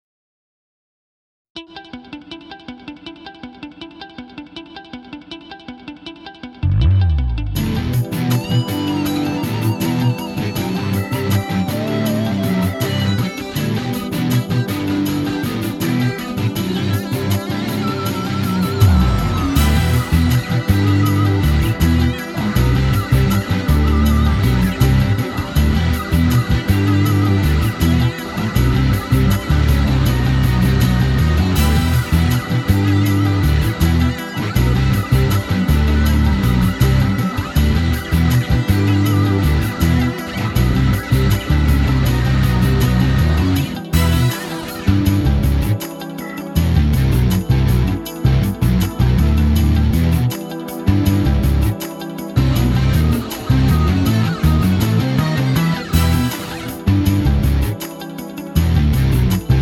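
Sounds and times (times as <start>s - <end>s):
rock music without drums: 1.6s - 59.6s.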